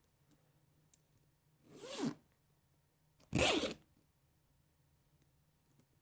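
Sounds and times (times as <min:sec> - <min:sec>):
zipper fastener: 0:01.7 - 0:02.2, 0:03.3 - 0:03.8.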